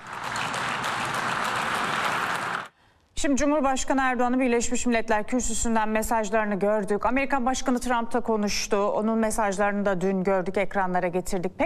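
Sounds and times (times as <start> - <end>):
applause from representatives after a speech at a conference: 0.0 - 2.8
speech: 3.2 - 11.6.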